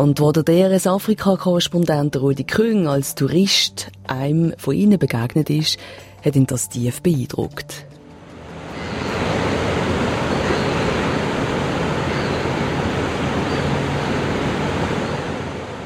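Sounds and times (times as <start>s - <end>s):
speech: 0.0s - 8.0s
heavy ocean surf breaking on the Cape Peninsula coast: 8.2s - 15.8s.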